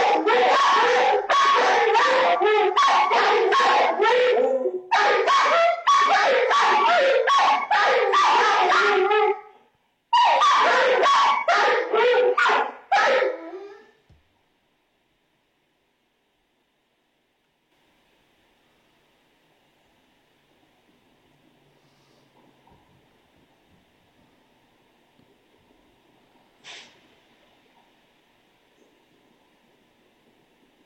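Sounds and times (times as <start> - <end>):
several dogs barking, yelping and whining in a video on a computer: 0.0 - 14.0.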